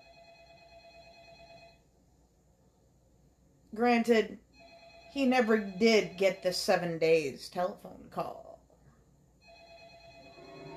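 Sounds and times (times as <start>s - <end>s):
telephone ringing with an electronic trill: 0.0s - 1.8s, 4.5s - 6.8s, 9.4s - 10.7s
speech: 3.8s - 4.4s, 5.2s - 8.4s.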